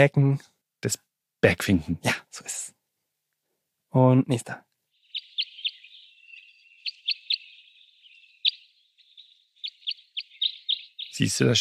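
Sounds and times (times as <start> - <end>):
speech: 0.0 - 2.8, 3.9 - 4.7, 11.2 - 11.5
crossbill jip flight calls: 4.9 - 11.5
thin continuous tone: 4.9 - 11.5.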